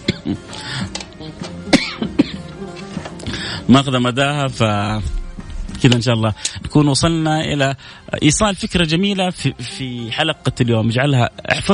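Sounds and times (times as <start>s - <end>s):
person coughing: 0.0s - 0.5s, 1.7s - 2.5s
throat clearing: 0.0s - 0.5s, 1.7s - 2.5s
speech: 0.3s - 0.8s, 3.7s - 5.2s, 5.8s - 11.7s.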